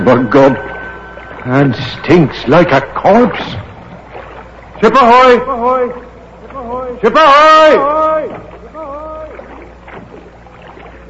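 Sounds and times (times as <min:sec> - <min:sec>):
brief creaky tonal sound: 0:00.0 - 0:04.1
constant wash of noise: 0:00.0 - 0:11.0
oars rowing a small boat through water in the mid-Atlantic: 0:00.0 - 0:11.0
speech: 0:00.1 - 0:00.7, 0:01.4 - 0:03.7, 0:04.8 - 0:06.0, 0:06.9 - 0:08.5.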